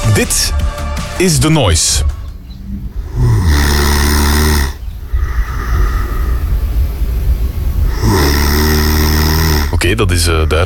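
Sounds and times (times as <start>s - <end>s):
speech: 0.2s - 2.1s, 9.9s - 10.6s
loud rattling snoring with deep buzzing low tones: 2.6s - 6.6s, 7.8s - 10.6s
quieter breathy exhale: 2.6s - 9.7s.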